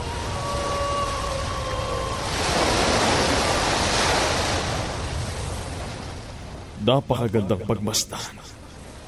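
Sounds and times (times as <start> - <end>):
ocean surf washing in: 0.0 - 9.0
speech: 6.8 - 8.6.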